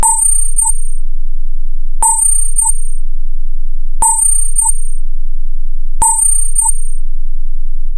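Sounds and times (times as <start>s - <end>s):
high-pitched electronic cricket sound from a synth loop: 0.0s - 1.0s, 2.0s - 3.1s, 4.0s - 5.2s, 6.0s - 7.2s.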